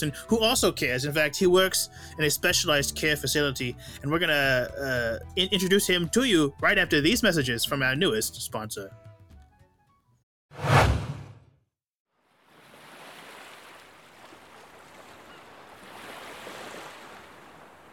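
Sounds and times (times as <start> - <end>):
speech: 0.0 - 9.1
ocean waves crashing: 12.6 - 17.9.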